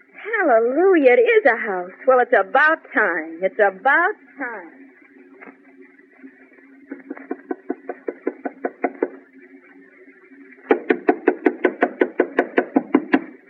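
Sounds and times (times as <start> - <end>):
speech: 0.4 - 4.8
laughter: 6.8 - 9.2, 10.7 - 13.2
knuckles knocking on the door of a house: 10.7 - 13.3.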